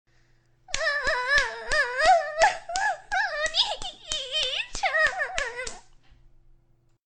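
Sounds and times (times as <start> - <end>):
girl moaning: 0.7 - 5.8
slapping sounds: 0.7 - 6.1.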